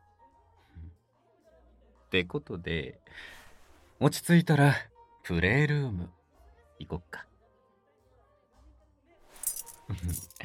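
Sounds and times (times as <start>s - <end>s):
speech: 2.1s - 3.4s, 4.0s - 6.2s, 6.8s - 7.3s, 9.9s - 10.4s
bunch of keys jangling: 9.3s - 10.4s.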